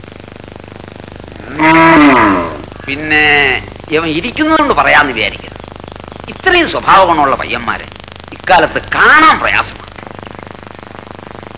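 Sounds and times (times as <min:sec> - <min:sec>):
cow mooing, calling for water: 0:01.4 - 0:02.8
speech: 0:01.5 - 0:05.5, 0:06.4 - 0:09.8.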